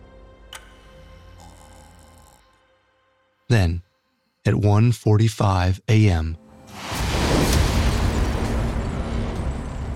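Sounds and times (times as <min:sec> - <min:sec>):
speech: 0:03.5 - 0:06.4
house explosion rumble at night: 0:06.8 - 0:09.9.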